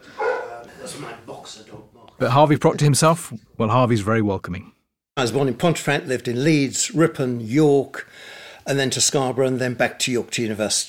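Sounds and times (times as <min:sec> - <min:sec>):
dog barking: 0:00.1 - 0:00.6
dog yipping and whining: 0:00.2 - 0:00.5
speech: 0:01.0 - 0:10.8.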